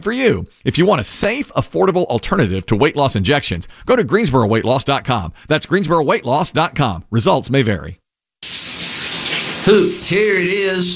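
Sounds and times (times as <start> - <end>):
speech: 0.0 - 8.0, 9.6 - 10.9
shower water running: 8.4 - 10.9.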